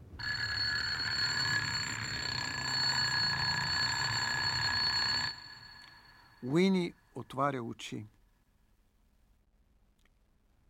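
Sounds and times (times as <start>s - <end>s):
loud electric bell ringing: 0.0s - 6.7s
speech: 6.4s - 8.2s.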